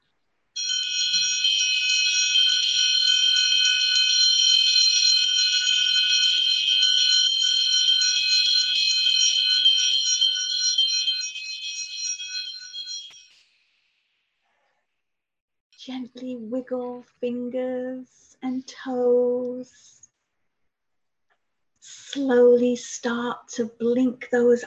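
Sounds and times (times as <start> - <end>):
meditation awakening bell ringing: 0.6 - 13.4
speech: 16.6 - 20.0, 22.1 - 24.6.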